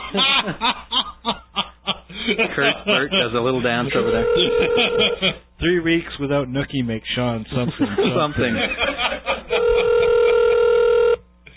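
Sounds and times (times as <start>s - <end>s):
laughter: 0.0s - 5.5s, 7.5s - 10.6s
speech: 0.1s - 1.4s, 2.3s - 9.1s
phone ringing tone through a receiver: 3.9s - 5.2s, 9.5s - 11.2s.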